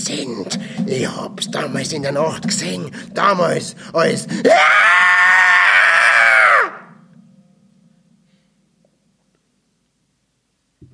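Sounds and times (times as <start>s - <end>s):
speech: 0.0s - 5.0s
old man's sudden terrified scream: 4.4s - 7.0s.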